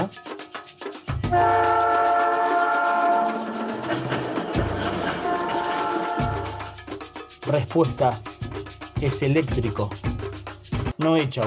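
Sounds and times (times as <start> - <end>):
speech: 1.3 - 1.7, 7.5 - 8.3, 9.0 - 10.1, 11.0 - 11.4
electric train rolling with a rumbling clatter: 1.4 - 6.8.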